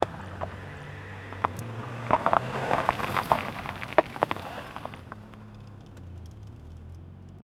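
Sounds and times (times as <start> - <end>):
old car driving 70 km/h heard from inside car: 0.0 - 7.4.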